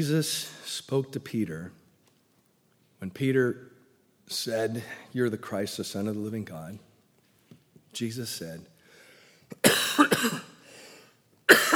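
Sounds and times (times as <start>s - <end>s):
speech: 0.0s - 1.8s, 3.0s - 3.7s, 4.3s - 6.9s, 7.9s - 8.7s, 9.6s - 10.5s
person imitating someone clearing his throat: 9.6s - 10.6s, 11.5s - 11.7s.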